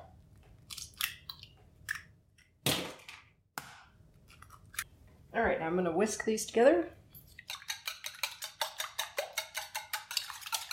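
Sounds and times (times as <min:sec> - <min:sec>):
eggs cracked into a bowl: 0:00.6 - 0:02.2, 0:07.3 - 0:10.7
speech: 0:05.4 - 0:07.0.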